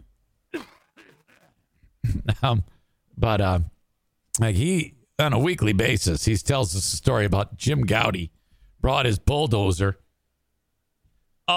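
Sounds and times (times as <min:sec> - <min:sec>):
voiced hacking grunts: 0:00.5 - 0:01.6
person clearing throat: 0:00.5 - 0:02.4
speech: 0:02.3 - 0:03.8, 0:04.4 - 0:10.0.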